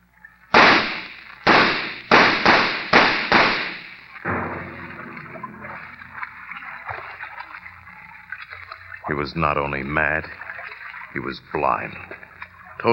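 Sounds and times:
gunshots in a tense standoff: 0.5 - 4.9
low steady rumbling noise: 0.6 - 8.0
speech: 9.1 - 10.4, 11.1 - 12.2.

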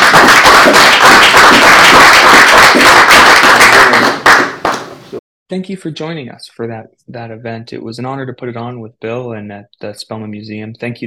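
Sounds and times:
audience applause after a museum event: 0.0 - 4.9
speech: 5.5 - 11.0.

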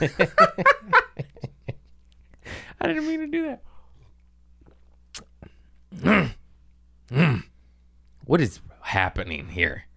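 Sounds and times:
speech: 0.0 - 0.8, 2.8 - 3.7, 6.0 - 6.4, 8.3 - 9.9
faint clicks and mouth noises: 4.6 - 5.5
short rough human throat growl: 5.9 - 6.4, 7.1 - 7.5.

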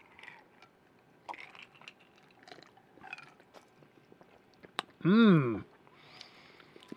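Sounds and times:
liquor poured into a glass: 0.0 - 0.7, 1.3 - 3.6
speech: 5.0 - 5.7.

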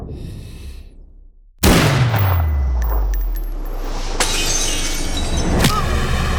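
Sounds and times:
gunfire during an attack by jet aircraft: 1.6 - 4.0
sharp bangs: 1.6 - 6.2.

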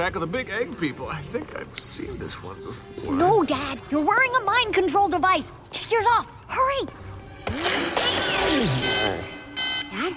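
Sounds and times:
speech: 0.0 - 7.0, 8.5 - 9.3, 9.9 - 10.1
alarm blaring with shrill electronic tones and wailing sweeps: 8.2 - 10.1.

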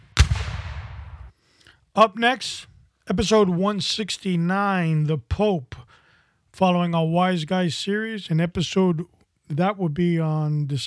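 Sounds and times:
cannon blast: 0.0 - 1.3
speech: 2.0 - 6.0, 6.6 - 10.8.

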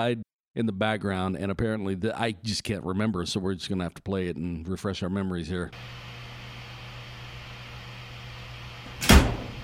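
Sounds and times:
speech: 0.0 - 6.2
faint steady hum: 5.7 - 9.6
door or cabinet shutting with a thump: 8.9 - 9.6.

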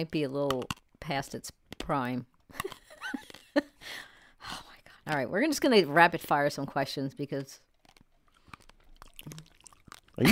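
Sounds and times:
speech: 0.0 - 2.8, 5.1 - 7.7, 10.2 - 10.3
soft chewing: 7.6 - 10.3
crunching on the hard seed of a fresh fruit: 7.7 - 10.2.

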